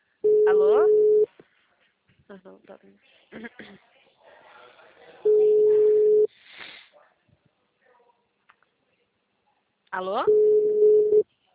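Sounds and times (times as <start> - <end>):
low-pitched telephone ringback beep: 0.2 - 1.3, 5.3 - 6.3, 10.3 - 11.2
quiet talk: 1.3 - 10.3, 11.2 - 11.5
speech: 2.3 - 4.0, 10.0 - 10.7.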